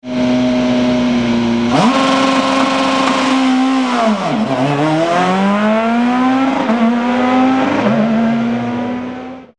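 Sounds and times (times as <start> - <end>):
Fiat Grande Punto S2000 car engine: 0.0 - 9.5.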